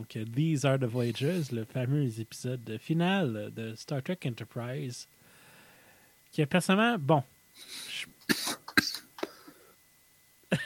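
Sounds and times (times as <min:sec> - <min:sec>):
speech: 0:00.0 - 0:05.2, 0:06.3 - 0:08.4
sharp harsh coughs: 0:08.2 - 0:09.2.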